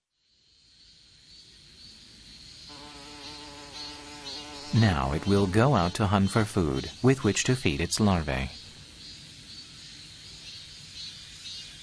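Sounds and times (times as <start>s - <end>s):
wasp buzzing while hovering: 2.7s - 6.9s
speech: 4.7s - 8.6s.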